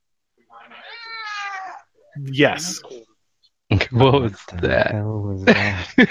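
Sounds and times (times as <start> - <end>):
cat meowing: 0.6 - 1.8
speech: 2.2 - 3.0, 3.8 - 6.0.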